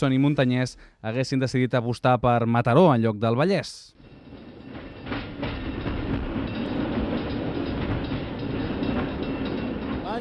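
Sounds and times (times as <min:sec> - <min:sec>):
speech: 0:00.0 - 0:04.2
train arriving at Sant Cugat rolling along the tracks: 0:03.9 - 0:10.1
rhythmic clatter of train wheels on rails: 0:04.0 - 0:10.1.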